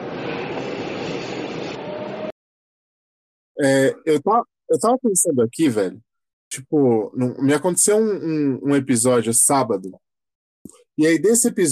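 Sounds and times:
train running on rails: 0:00.0 - 0:02.3
speech: 0:03.6 - 0:11.7.

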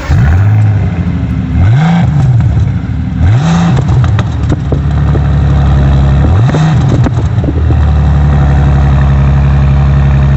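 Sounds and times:
Bentley Continental GT car engine revving and idling: 0:00.0 - 0:10.3.

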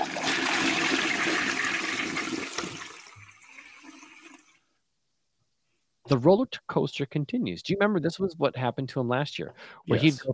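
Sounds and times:
toilet flushing: 0:00.0 - 0:04.6
speech: 0:06.1 - 0:10.3.

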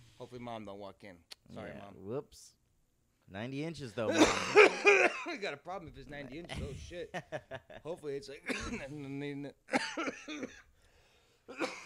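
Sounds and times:
speech: 0:00.2 - 0:02.6, 0:03.3 - 0:10.7, 0:11.5 - 0:11.8
person coughing: 0:04.1 - 0:05.4, 0:08.4 - 0:09.0, 0:09.7 - 0:10.7, 0:11.5 - 0:11.8.

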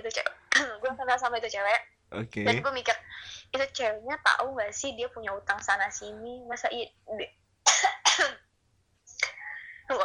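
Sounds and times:
speech: 0:01.1 - 0:07.4, 0:09.9 - 0:10.0
person coughing harshly: 0:07.7 - 0:08.4.

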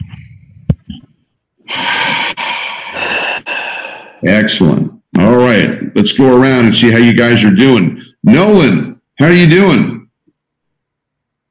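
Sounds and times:
group of students taking a deep breath together: 0:01.6 - 0:04.3
speech: 0:04.2 - 0:09.9.

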